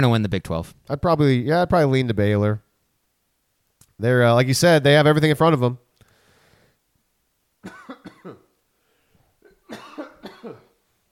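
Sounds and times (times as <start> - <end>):
speech: 0.0 - 2.6, 4.0 - 5.9, 7.6 - 8.4
harsh raspy hacking coughing: 7.6 - 8.5, 9.4 - 10.8.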